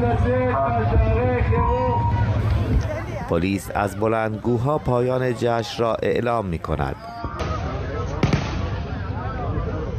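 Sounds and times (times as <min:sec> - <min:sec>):
murmuring voices and commotion: 0:00.0 - 0:09.9
speech: 0:02.7 - 0:07.2
gunshots: 0:07.4 - 0:08.8.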